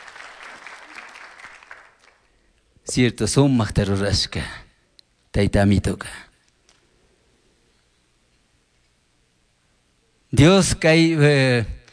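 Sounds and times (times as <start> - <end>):
worship gathering applause: 0.0 - 2.3
speech: 2.9 - 4.6, 5.4 - 6.3, 10.4 - 11.8.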